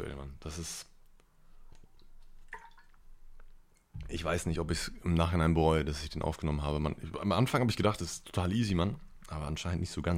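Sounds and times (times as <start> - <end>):
speech: 0.0 - 0.9, 4.1 - 10.1
person sipping and gulping water: 1.4 - 4.1.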